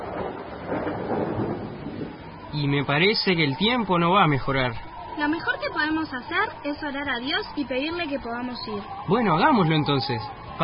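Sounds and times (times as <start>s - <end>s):
thunder outside: 0.0s - 3.9s
rain outside: 0.0s - 10.6s
speech: 2.5s - 10.6s.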